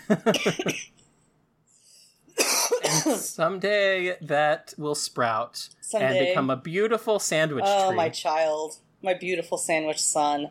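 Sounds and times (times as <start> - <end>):
person with a sinus infection and a seed stuck in the throat coughing: 0.1 - 0.9, 2.4 - 3.3
speech: 0.1 - 0.9, 3.1 - 10.4.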